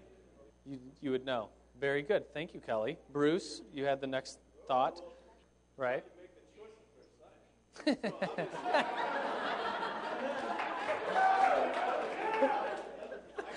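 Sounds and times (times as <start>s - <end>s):
speech: 0.7s - 5.2s, 5.8s - 6.1s, 7.8s - 9.1s
people laughing: 7.8s - 13.5s
group of men cheering and whooping in a room: 8.3s - 13.5s.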